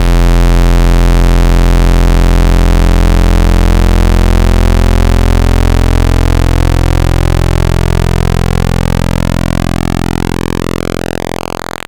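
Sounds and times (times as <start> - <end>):
PWM synth pulse tone: 0.0 - 11.8.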